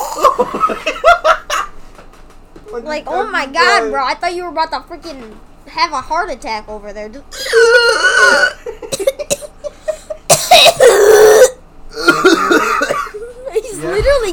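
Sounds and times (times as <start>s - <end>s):
harsh raspy wheezy coughing fit: 0.0s - 0.7s, 1.5s - 1.7s, 7.4s - 13.3s
speech: 0.4s - 1.4s, 2.7s - 8.6s.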